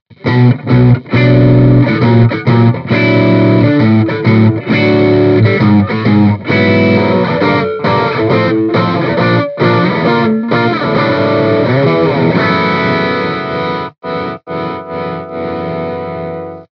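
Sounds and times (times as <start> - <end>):
overdriven Les Paul electric guitar through a G12H 65 speaker: 0.1 - 16.7.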